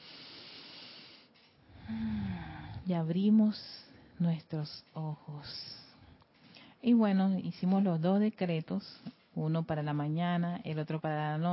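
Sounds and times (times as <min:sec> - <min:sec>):
deep breath: 0:00.0 - 0:02.9
faint hum with an exhale: 0:00.0 - 0:11.5
speech: 0:02.9 - 0:05.8, 0:06.8 - 0:11.5.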